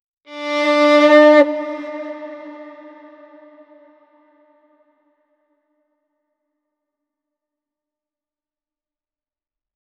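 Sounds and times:
violin: 0.3 - 4.4.

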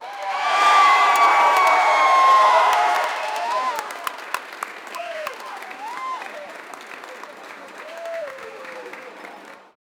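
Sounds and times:
crowd of 400 people clapping: 0.0 - 9.8.

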